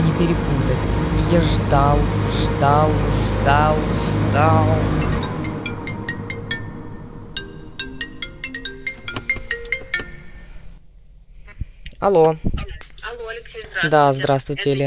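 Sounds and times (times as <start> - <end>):
speech: 0.2 - 5.2, 12.0 - 12.8, 13.5 - 14.8
phone ringing with an incoming call, electronic ringtone: 4.7 - 10.7.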